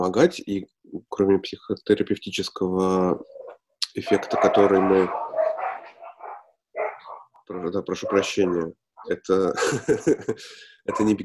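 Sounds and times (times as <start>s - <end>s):
speech: 0.0s - 3.3s, 4.0s - 5.2s, 7.5s - 11.2s
two small dogs barking and yapping: 3.3s - 9.2s, 10.9s - 11.2s
laughter: 9.4s - 11.0s.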